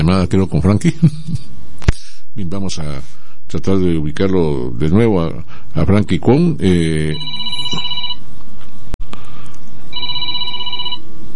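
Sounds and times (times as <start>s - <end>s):
speech: 0.1s - 1.5s, 2.4s - 7.9s
telephone ringing with an incoming call: 7.1s - 8.2s, 9.9s - 11.1s.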